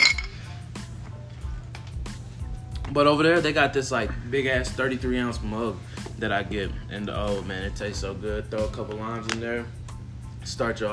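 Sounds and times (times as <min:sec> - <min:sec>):
glass beer bottles clinking in a toast: 0:00.0 - 0:00.4
speech: 0:02.9 - 0:09.8, 0:10.4 - 0:10.9.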